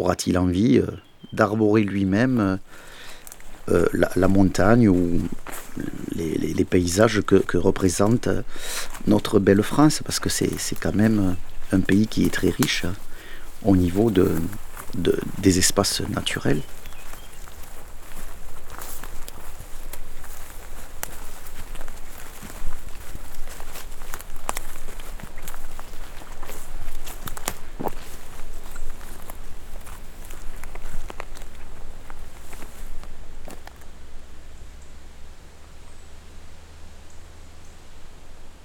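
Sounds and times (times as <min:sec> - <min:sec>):
speech: 0:00.0 - 0:02.9, 0:03.7 - 0:16.8
constant soft wind outdoors: 0:00.0 - 0:38.6
footsteps crunching on a gravelly mountain trail outdoors: 0:01.2 - 0:34.0.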